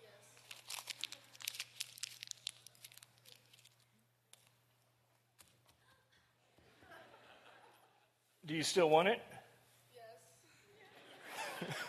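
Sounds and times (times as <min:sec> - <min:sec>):
paper bill being crumpled up: 0:00.4 - 0:04.5
laughter: 0:05.8 - 0:08.2, 0:10.8 - 0:11.8
speech: 0:08.5 - 0:09.3.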